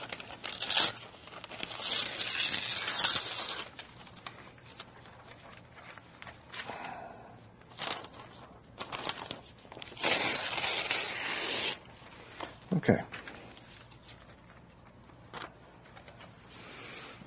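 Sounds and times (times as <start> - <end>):
piece of paper ripping: 0.0 - 6.4, 7.7 - 11.9
speech: 12.8 - 13.2.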